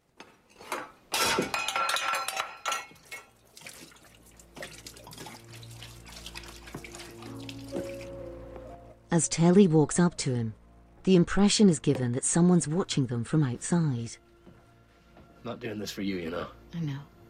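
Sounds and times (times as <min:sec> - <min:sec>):
mug tossed into a sink clinking and knocking: 0:01.3 - 0:03.4
liquid pouring from a bottle down a sink drain: 0:03.0 - 0:08.2
speech: 0:09.2 - 0:14.3, 0:15.4 - 0:17.1.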